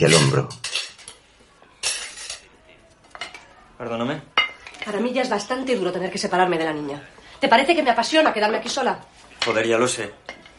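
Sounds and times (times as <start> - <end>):
speech: 0.0 - 0.7, 3.8 - 10.4
plates clinking and clattering as dishes are carried to the sink: 0.0 - 3.5, 4.3 - 5.1, 9.3 - 10.5.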